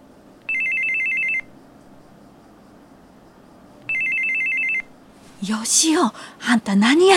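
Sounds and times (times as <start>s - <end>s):
telephone ringing with a trilling electronic burst: 0.5s - 1.5s, 3.9s - 4.9s
speech: 5.4s - 7.1s.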